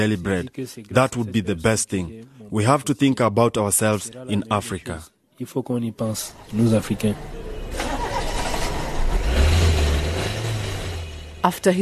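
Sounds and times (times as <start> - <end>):
speech: 0.0 - 7.4, 11.4 - 11.8
car engine starting and revving: 6.3 - 11.8.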